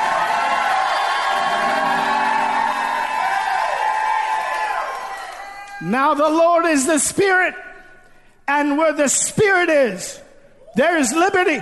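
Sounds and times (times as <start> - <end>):
audience shouting and cheering: 0.0 - 5.9
speech: 5.8 - 7.7, 8.5 - 10.2, 10.8 - 11.5.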